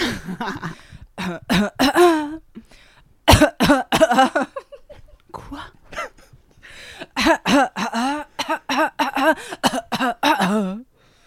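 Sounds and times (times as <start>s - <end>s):
person coughing: 0.0s - 2.4s, 3.3s - 4.7s, 5.4s - 6.4s, 7.0s - 10.8s
speech: 0.3s - 2.1s.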